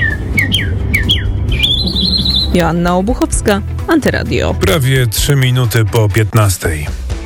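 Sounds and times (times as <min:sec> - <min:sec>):
human mouth mimicking bird trills at a birdsong imitation contest: 0:00.0 - 0:02.6
speech: 0:02.6 - 0:07.0.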